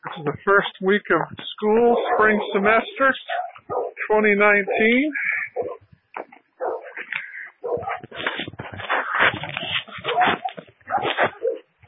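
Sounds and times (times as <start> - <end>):
speech: 0.1 - 5.3
dog whimpering, yipping and barking: 1.8 - 4.0, 5.5 - 5.8, 6.6 - 7.0, 7.6 - 8.1, 10.0 - 11.8.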